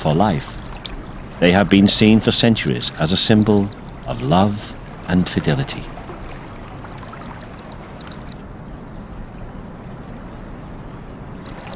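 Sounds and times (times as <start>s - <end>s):
speech: 0.0s - 0.6s, 1.4s - 6.0s
mandarin ducks calling in a park in Beijing China: 0.0s - 8.4s, 11.4s - 11.7s
outdoor noise: 0.0s - 11.7s
steady wash of water: 0.0s - 11.7s.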